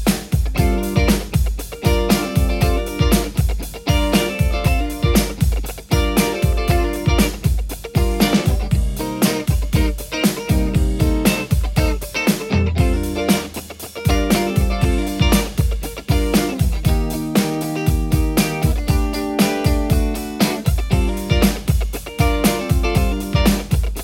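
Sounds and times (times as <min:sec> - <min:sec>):
electric guitar: 0:00.2 - 0:24.0.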